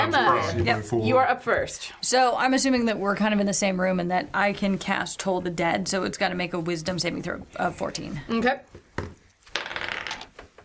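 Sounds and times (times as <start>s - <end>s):
speech: 0.0s - 9.1s
dice clattering as they are gathered and shuffled in a hand: 9.4s - 10.4s.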